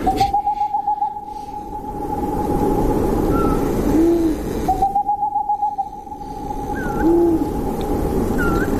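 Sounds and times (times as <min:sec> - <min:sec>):
bird soft short whistled calls: 0:00.0 - 0:01.8, 0:03.3 - 0:07.5, 0:08.3 - 0:08.7
boreal owl calling in low rapid hoots: 0:00.0 - 0:08.7.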